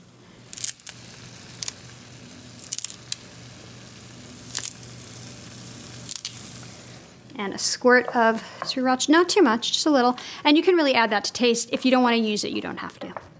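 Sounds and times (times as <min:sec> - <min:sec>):
faint hum: 0:00.0 - 0:13.3
fresh cilantro being torn by hand over a bowl of food: 0:00.5 - 0:01.8, 0:02.5 - 0:03.2, 0:04.4 - 0:05.0, 0:05.9 - 0:06.6
speech: 0:07.4 - 0:13.3.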